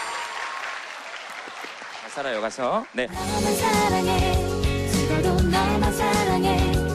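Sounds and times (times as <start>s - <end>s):
studio audience applause: 0.0s - 3.2s
speech: 2.1s - 4.5s, 5.1s - 6.8s.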